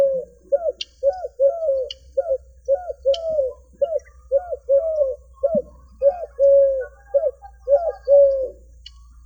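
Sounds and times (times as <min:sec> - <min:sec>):
Eurasian collared dove cooing at Dandoba hill Sangli: 0:00.0 - 0:08.8.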